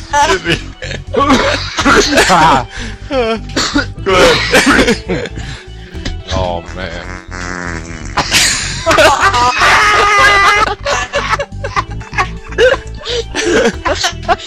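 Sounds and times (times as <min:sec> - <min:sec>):
speech: 0:00.1 - 0:05.6, 0:06.3 - 0:07.2, 0:13.6 - 0:14.4
snickering laughter: 0:01.2 - 0:02.5, 0:06.4 - 0:14.4
loud wet juicy sputtering mouth fart: 0:06.9 - 0:08.8.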